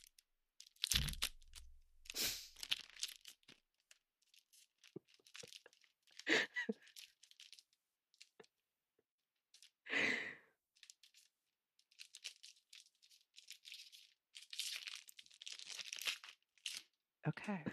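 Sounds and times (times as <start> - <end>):
card packaging tearing open: 0.0 - 7.7, 11.9 - 16.9
stiff card packaging crinkling: 0.0 - 8.4, 10.8 - 16.9
speech: 17.3 - 17.7.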